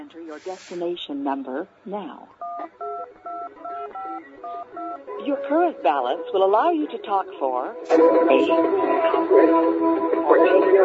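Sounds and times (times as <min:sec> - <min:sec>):
speech: 0:00.1 - 0:02.9, 0:03.5 - 0:10.8
telephone DTMF keypad tones during redialing: 0:02.4 - 0:05.0.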